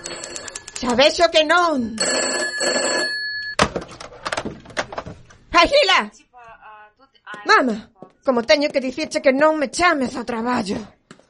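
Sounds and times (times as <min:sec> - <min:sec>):
telephone bell ringing: 0:00.0 - 0:03.6
speech: 0:00.8 - 0:03.2, 0:05.6 - 0:06.2, 0:07.3 - 0:11.0.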